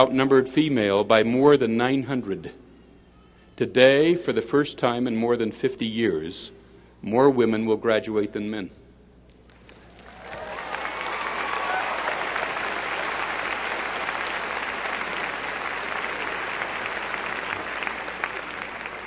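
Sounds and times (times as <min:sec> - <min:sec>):
speech: 0:00.0 - 0:02.6, 0:03.6 - 0:08.8
large audience applause: 0:09.5 - 0:19.0
cheers: 0:09.9 - 0:19.0.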